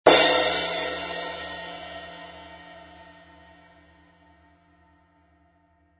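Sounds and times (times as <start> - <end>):
16-inch medium crash cymbal: 0.1 - 4.3.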